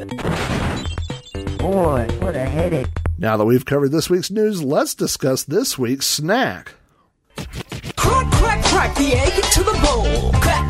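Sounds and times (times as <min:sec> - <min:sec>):
cartoon-style crash with ringing tones, clattering and clanks: 0:00.2 - 0:01.3
speech: 0:01.6 - 0:06.8, 0:08.7 - 0:10.6.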